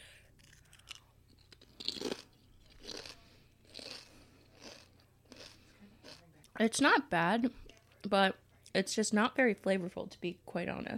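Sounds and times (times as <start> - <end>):
sea salt and apple cider vinegar chip crunching: 0.4 - 6.2
speech: 6.6 - 10.9.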